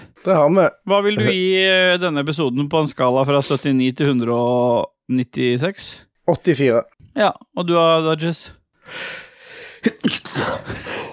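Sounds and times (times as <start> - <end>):
speech: 0.2 - 11.1
person sneezing: 9.8 - 11.1.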